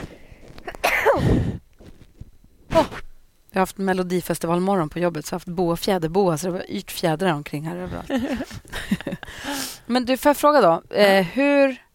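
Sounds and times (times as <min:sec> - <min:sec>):
loud person sneezing: 0:00.8 - 0:01.6, 0:02.7 - 0:03.1
speech: 0:03.6 - 0:11.8
laughter: 0:07.8 - 0:09.3.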